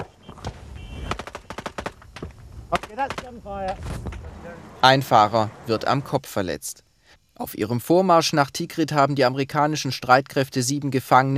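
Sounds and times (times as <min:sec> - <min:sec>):
burst of gunfire at a checkpoint: 0:00.0 - 0:04.3
low engine rumble: 0:02.0 - 0:06.0
speech: 0:03.0 - 0:06.8, 0:07.4 - 0:11.3.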